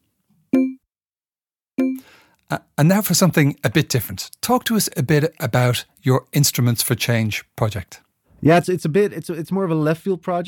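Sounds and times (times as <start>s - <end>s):
alert notification sound of short bright tonal blips: 0.5s - 0.8s, 1.8s - 2.0s
speech: 2.5s - 10.4s.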